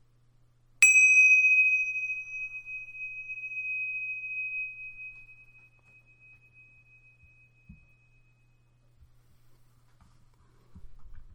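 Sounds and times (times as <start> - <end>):
bell struck with a bright metallic tone: 0.8 - 8.0.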